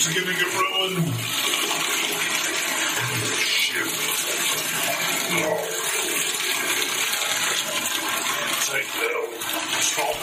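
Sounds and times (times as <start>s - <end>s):
speech: 0.0s - 1.6s, 3.0s - 10.2s
water rushing: 0.0s - 10.2s.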